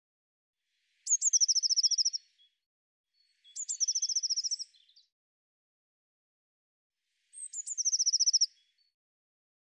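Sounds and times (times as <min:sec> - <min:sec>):
Eurasian blue tit singing: 0:01.1 - 0:02.2, 0:03.4 - 0:05.0, 0:07.4 - 0:08.6.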